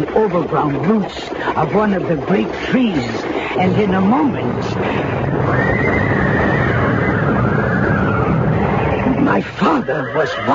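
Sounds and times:
speech: 0.0 - 6.3, 9.3 - 10.5
dense rumbling wash of noise: 0.0 - 10.5
terrified coach horses whinnying: 2.8 - 10.5.

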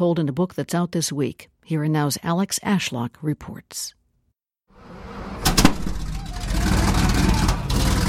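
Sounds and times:
speech: 0.0 - 4.0
mechanical clatter of a vintage Sherman tank: 5.4 - 8.0
vintage Sherman tank driving down a street in Boston: 5.4 - 8.0.

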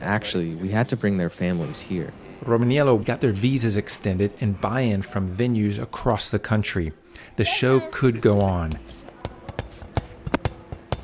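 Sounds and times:
faint voices murmuring backstage: 0.0 - 8.5
speech: 0.1 - 9.0
dodgeball bouncing and smacking backstage: 8.4 - 11.0.

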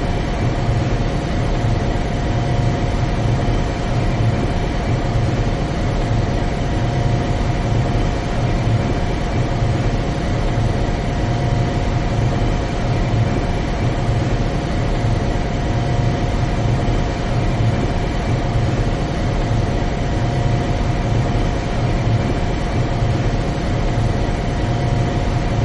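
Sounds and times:
deep low rumble of machine room equipment: 0.0 - 25.6.

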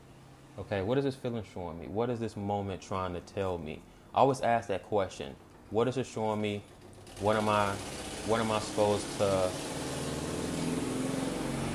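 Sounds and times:
speech: 0.6 - 9.7
loud car engine rumbling: 7.1 - 11.7.

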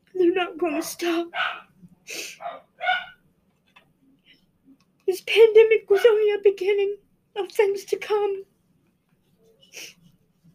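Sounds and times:
speech: 0.4 - 3.1, 5.1 - 8.5, 9.8 - 10.0
dogs barking: 0.8 - 1.7, 2.4 - 3.2.

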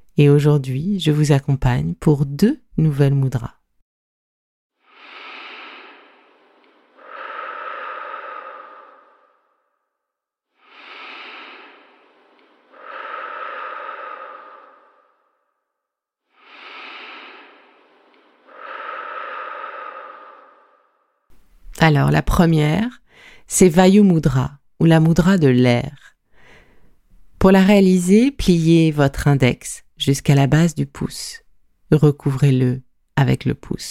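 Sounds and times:
speech: 0.2 - 3.6, 21.9 - 26.1, 27.4 - 33.8
slow deep breaths for a centering breathing exercise: 4.8 - 21.4, 23.0 - 23.5, 26.2 - 27.1.

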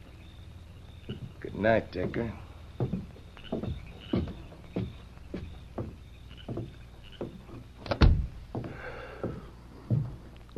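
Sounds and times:
footsteps on a floor: 1.1 - 1.4, 2.0 - 7.8, 8.4 - 10.5
speech: 1.1 - 3.0
door shutting with a bang: 7.8 - 8.4.

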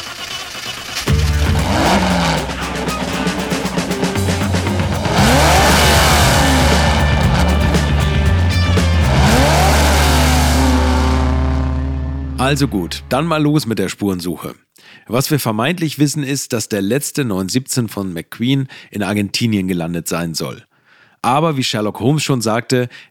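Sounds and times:
race car engine revving and accelerating: 1.1 - 13.5
steady punchy backing: 1.1 - 13.8
speech: 12.5 - 23.0.

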